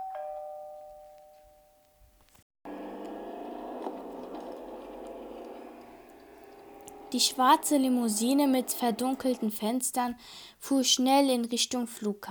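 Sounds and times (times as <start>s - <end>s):
doorbell chime: 0.0s - 1.8s
steady rushing hum: 2.7s - 9.7s
speech: 7.1s - 12.2s.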